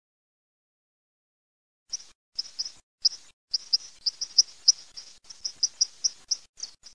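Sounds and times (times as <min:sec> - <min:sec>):
white-throated dipper singing: 0:01.9 - 0:06.9.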